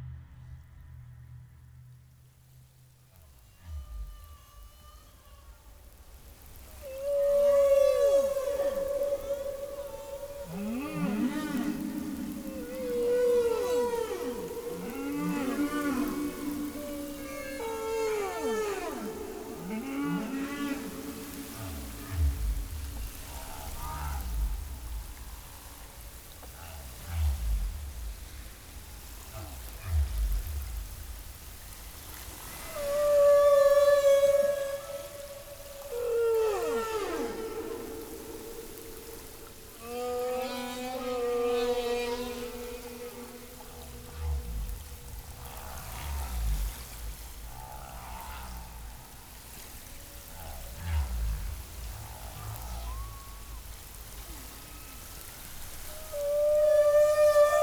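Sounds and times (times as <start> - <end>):
humpback whale song: 0.0 - 57.6.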